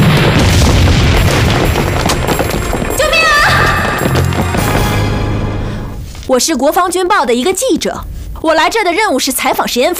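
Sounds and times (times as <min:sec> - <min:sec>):
time bomb exploding outside a hall: 0:00.0 - 0:04.8
speech: 0:06.3 - 0:09.9.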